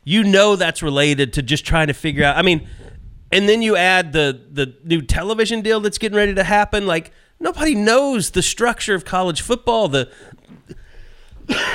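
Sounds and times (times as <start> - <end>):
speech: 0.0 - 10.8, 11.5 - 11.7
faint low rumbling: 1.4 - 3.6
harsh loud cough from a person with COVID: 10.2 - 11.7.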